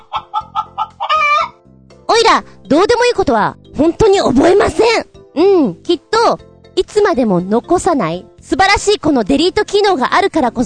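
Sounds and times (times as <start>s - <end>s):
chicken clucking: 0.0s - 1.5s
speech: 2.3s - 10.6s.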